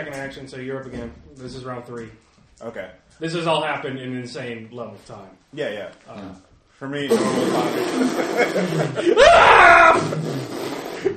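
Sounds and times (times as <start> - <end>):
speech: 0.0 - 10.6
laughter: 7.1 - 10.2
exaggerated drawn-out mock slow-motion scream: 9.0 - 10.2.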